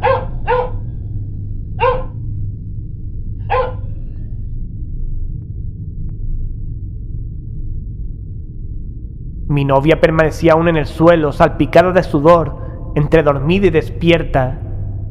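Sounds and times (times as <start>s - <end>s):
dog barking outside: 0.0s - 0.9s, 1.8s - 2.2s, 3.5s - 4.0s
steady low hum: 0.0s - 15.0s
speech: 9.6s - 14.6s.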